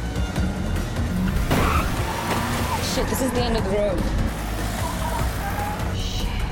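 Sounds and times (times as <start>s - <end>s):
swerving car engine roaring: 0.0s - 6.4s
tire noise of swerving car: 0.0s - 6.4s
crunching car impact from behind: 1.4s - 3.0s
speech: 3.0s - 4.2s.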